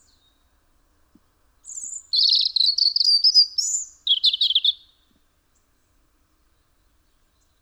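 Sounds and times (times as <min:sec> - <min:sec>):
European robin Erithacus rubecula singing: 0:01.6 - 0:05.0.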